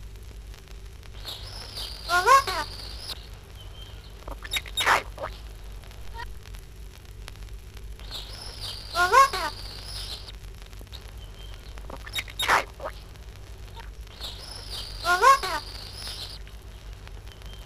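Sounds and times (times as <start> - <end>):
parrot chattering: 2.0 - 2.8, 4.3 - 5.4, 8.1 - 10.3, 11.9 - 13.0, 14.2 - 16.4.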